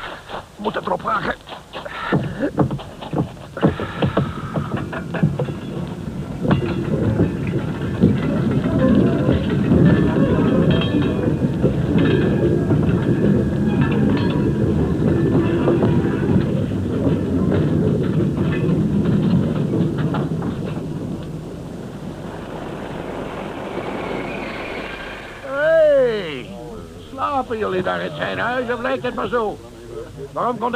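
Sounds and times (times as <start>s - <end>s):
steam train rumbling past at range: 0.0s - 30.7s
speech: 0.6s - 1.4s, 27.8s - 29.7s, 30.4s - 30.7s
brief rising whistle-like tone: 22.6s - 25.7s.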